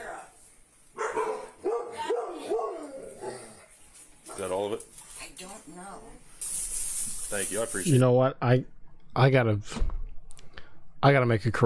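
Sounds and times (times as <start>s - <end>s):
dog barking in short high yelps: 1.0s - 3.6s
speech: 7.3s - 10.0s, 11.0s - 11.6s.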